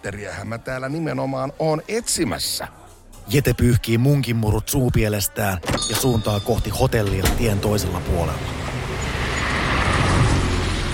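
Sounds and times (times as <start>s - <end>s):
speech: 0.0s - 8.6s
car and bus engines in dense city centre traffic: 6.8s - 10.9s
heavy city centre road traffic rumbling: 6.8s - 10.9s.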